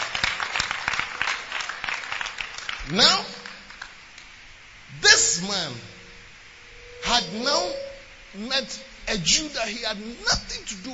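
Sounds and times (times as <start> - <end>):
crowd applauding: 0.0 - 4.0
speech: 2.9 - 3.4, 5.1 - 5.9, 7.0 - 10.9.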